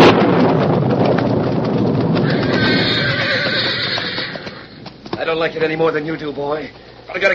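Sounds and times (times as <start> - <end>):
storm wind roaring: 0.0 - 6.2
horse whinnying: 2.1 - 4.9
speech: 5.4 - 7.3.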